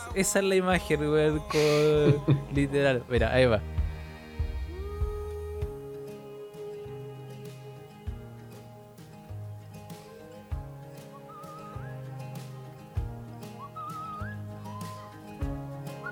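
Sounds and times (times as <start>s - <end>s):
sustained backing tones: 0.0s - 16.1s
speech: 0.2s - 3.8s
steady low bass pulse in a song: 1.0s - 5.8s
laughter: 1.5s - 2.8s
flute playing a gliding bird-like melody: 10.0s - 16.1s.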